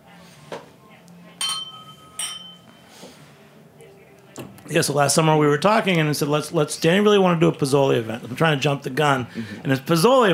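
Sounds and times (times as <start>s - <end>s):
faint murmur: 0.0s - 10.3s
glasses clinking in a toast: 1.4s - 2.9s
speech: 4.7s - 10.3s.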